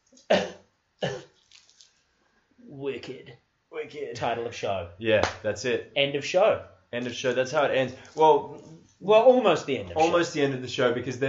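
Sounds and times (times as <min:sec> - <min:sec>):
speech: 0:00.3 - 0:00.6, 0:03.9 - 0:11.2
man coughing: 0:00.3 - 0:01.3.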